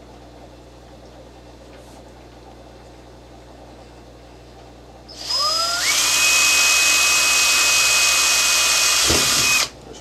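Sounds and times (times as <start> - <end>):
power drill drilling holes: 5.1 - 9.8.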